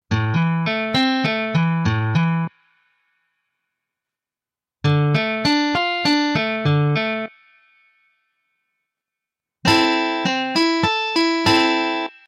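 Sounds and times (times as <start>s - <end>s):
arpeggios: 0.1s - 2.6s, 4.8s - 7.9s, 9.7s - 12.2s.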